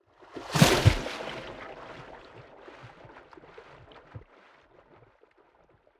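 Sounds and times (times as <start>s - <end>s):
waves splashing hard: 0.4s - 2.2s.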